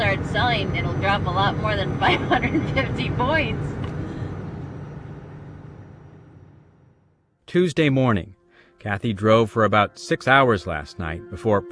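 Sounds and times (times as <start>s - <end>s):
low diesel rumble of idling trucks at a truck stop: 0.0s - 7.0s
speech: 0.4s - 3.8s, 7.5s - 11.7s.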